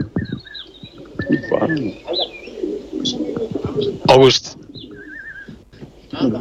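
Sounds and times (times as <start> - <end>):
high bird chirps: 0.0 - 4.0, 4.6 - 5.6
pigeons cooing in a racing pigeon loft: 0.0 - 6.3
speech: 1.3 - 2.3, 3.8 - 4.6, 6.2 - 6.3.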